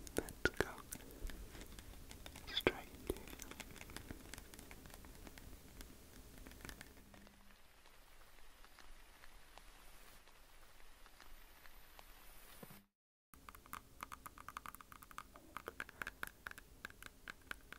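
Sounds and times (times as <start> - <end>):
teeth tapping: 0.0 - 7.4, 13.4 - 17.7.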